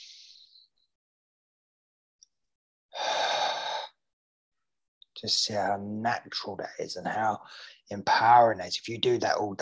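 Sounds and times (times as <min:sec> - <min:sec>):
breathy sigh: 0:03.0 - 0:04.0
person taking a slow deliberate breath: 0:03.0 - 0:04.0, 0:07.4 - 0:07.8
speech: 0:05.2 - 0:09.6.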